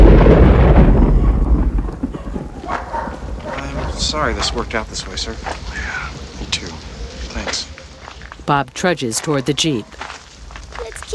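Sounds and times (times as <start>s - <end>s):
thunder rumbling during a storm: 0.0s - 7.8s
speech: 4.2s - 6.0s, 8.5s - 10.0s.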